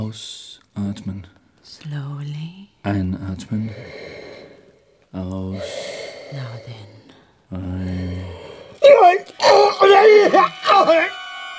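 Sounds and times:
speech: 0:00.1 - 0:04.2, 0:05.1 - 0:11.2
man screaming in pain while holding his stomach: 0:08.8 - 0:11.1.

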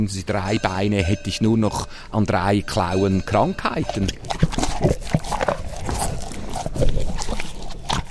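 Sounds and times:
speech: 0:00.0 - 0:05.2
cows crunching and chewing apples: 0:00.0 - 0:08.0
cows snuffling breaths: 0:03.8 - 0:08.0.

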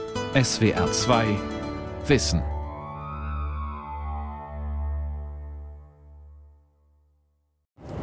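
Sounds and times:
speech: 0:00.4 - 0:01.5, 0:02.1 - 0:02.6
brief electronic tone: 0:02.4 - 0:06.5.

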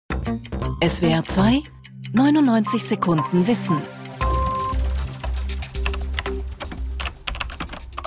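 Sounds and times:
speech: 0:00.2 - 0:04.0
keyboard typing: 0:02.6 - 0:08.0.

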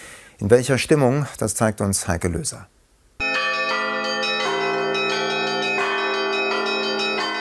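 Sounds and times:
speech: 0:00.4 - 0:02.8
Russian Orthodox church bells ringing a special chime for Christmas service: 0:03.2 - 0:07.4.

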